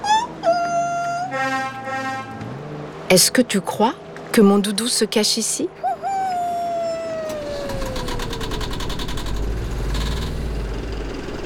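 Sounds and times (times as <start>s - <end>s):
vaporetto water bus engine idling in Venice: 0.0s - 11.4s
long falling horn-like tone: 0.4s - 2.8s
speech: 3.1s - 5.9s.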